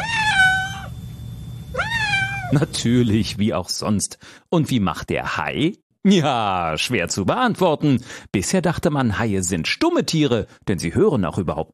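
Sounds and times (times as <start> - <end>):
domestic cat meowing: 0.0 - 1.0, 1.7 - 2.6
low steady hum: 0.0 - 4.4
speech: 2.5 - 11.7.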